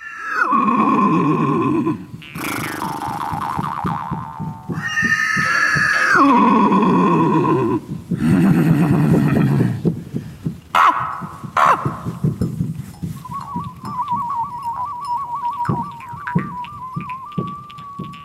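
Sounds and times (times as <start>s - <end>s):
horse whinnying: 0.0s - 3.3s, 4.7s - 9.8s, 10.8s - 12.2s
rapid pulsing bursts: 2.2s - 18.2s.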